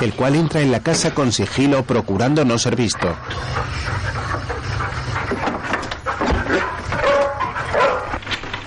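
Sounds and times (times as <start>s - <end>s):
speech: 0.0s - 4.5s
dogs barking as they run to greet someone entering a house: 2.6s - 8.5s.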